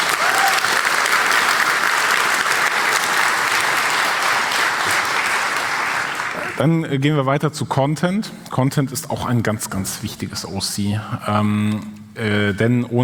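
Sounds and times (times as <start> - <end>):
large audience applauding: 0.0 - 6.6
speech: 6.6 - 13.0.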